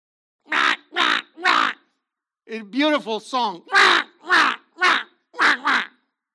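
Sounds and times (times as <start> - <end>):
crow cawing: 0.5 - 1.9, 3.7 - 6.0
speech: 2.5 - 4.0.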